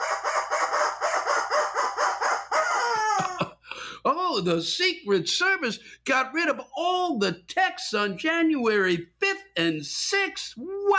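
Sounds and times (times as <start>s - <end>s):
rubber chicken toy squawking: 0.0s - 3.3s
speech: 4.4s - 10.9s.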